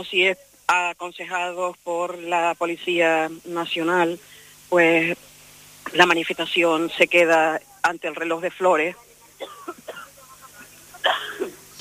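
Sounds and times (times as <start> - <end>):
speech: 0.0 - 5.3, 5.9 - 9.8
faint cough: 9.4 - 10.2, 11.0 - 11.6.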